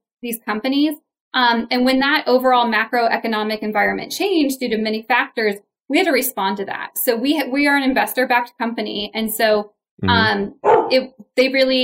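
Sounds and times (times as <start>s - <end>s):
speech: 0.2s - 11.8s
dog barking: 10.6s - 11.0s.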